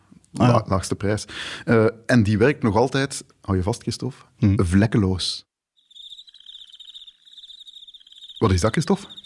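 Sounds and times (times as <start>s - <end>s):
speech: 0.5s - 5.5s, 8.4s - 9.2s
swarm of crickets chirping: 5.8s - 9.2s.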